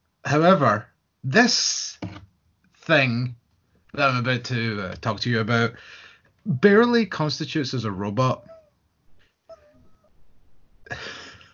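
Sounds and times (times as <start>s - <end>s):
speech: 0.3s - 2.0s, 2.9s - 8.5s
cat meowing: 8.4s - 8.8s, 9.5s - 10.8s.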